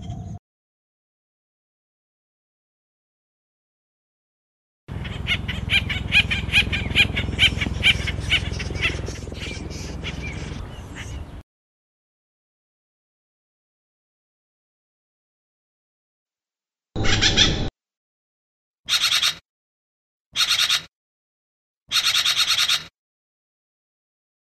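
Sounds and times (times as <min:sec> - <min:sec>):
Acorn woodpecker calling in harsh repeated notes: 0:04.9 - 0:11.4, 0:17.0 - 0:17.7, 0:18.9 - 0:19.4, 0:20.4 - 0:20.9, 0:21.9 - 0:22.9.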